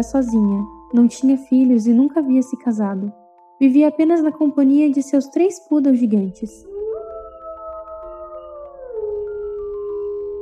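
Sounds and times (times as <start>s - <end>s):
speech: 0.0s - 6.7s
distant animal howl: 6.6s - 10.3s.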